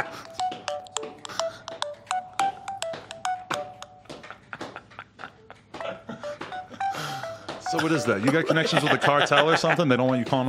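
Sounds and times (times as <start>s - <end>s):
phone keypad dialing tones: 0.0s - 4.0s, 5.9s - 8.4s
laughter: 4.0s - 10.4s
speech: 7.7s - 10.4s.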